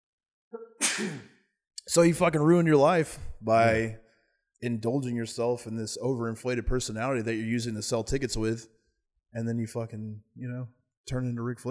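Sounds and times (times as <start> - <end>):
person sneezing: 0.6 - 1.3
speech: 1.0 - 1.3, 1.9 - 4.0, 4.6 - 11.7.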